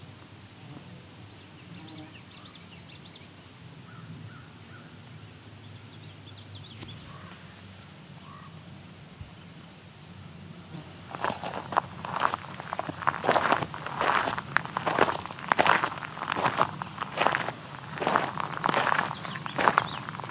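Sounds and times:
indigo buntings singing: 0:01.0 - 0:20.2.

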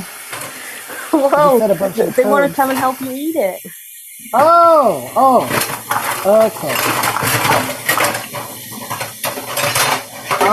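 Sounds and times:
speech: 0:01.2 - 0:07.8
kitchen dishes and cutlery clattering as someone rummages for a teaspoon: 0:05.5 - 0:10.5.

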